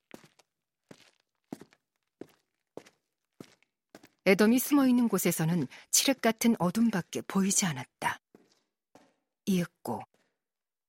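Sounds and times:
footsteps: 0:00.0 - 0:04.3, 0:08.2 - 0:09.3
speech: 0:04.3 - 0:08.2, 0:09.5 - 0:10.1.

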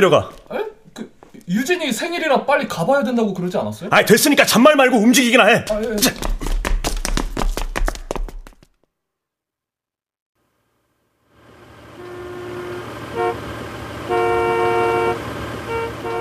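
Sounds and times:
speech: 0:00.0 - 0:00.4, 0:01.5 - 0:06.4
rapid tapping: 0:05.6 - 0:08.8
steady rumble of idling traffic: 0:11.3 - 0:16.1
car horns honking in a traffic jam: 0:11.9 - 0:16.1.

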